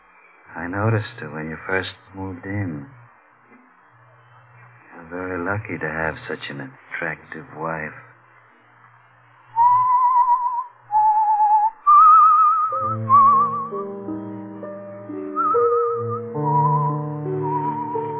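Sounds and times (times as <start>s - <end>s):
speech: 0.5s - 3.0s, 5.1s - 8.1s
person whistling a tune: 9.5s - 13.8s, 15.3s - 18.1s
soft instrumental accompaniment: 12.7s - 18.1s.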